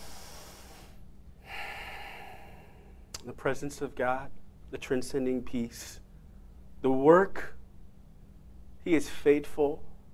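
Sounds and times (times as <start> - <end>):
deep inhale during a guided prayer in a church service: 0.0 - 3.1
low hum: 0.0 - 10.1
speech: 3.2 - 6.0, 6.8 - 7.6, 8.8 - 9.9.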